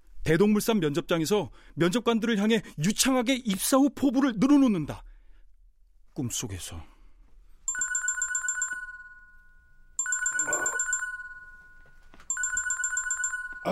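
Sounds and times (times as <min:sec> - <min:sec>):
speech: 0:00.2 - 0:05.1, 0:06.2 - 0:06.9
telephone ringing with warbling trill: 0:07.7 - 0:13.7.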